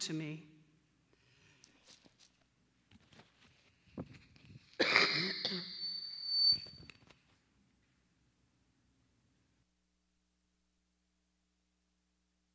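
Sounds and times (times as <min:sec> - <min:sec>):
speech: 0:00.0 - 0:00.5
breaths: 0:01.1 - 0:02.0
throat clearing: 0:04.8 - 0:05.7
person coughing loudly: 0:04.8 - 0:05.8
thin wheezy whistle: 0:05.4 - 0:07.0.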